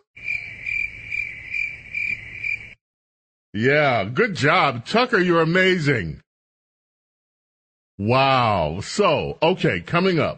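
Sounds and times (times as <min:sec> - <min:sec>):
crickets chirping: 0:00.2 - 0:02.8
speech: 0:03.6 - 0:06.2, 0:08.0 - 0:10.3.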